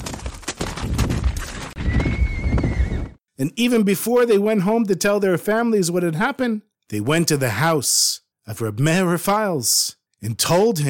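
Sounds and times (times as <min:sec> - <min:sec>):
horses and carriage hooves clip-clopping: 0:00.0 - 0:03.1
high whinnying tone: 0:01.8 - 0:03.2
horse neighing: 0:01.8 - 0:03.2
speech: 0:03.4 - 0:10.8.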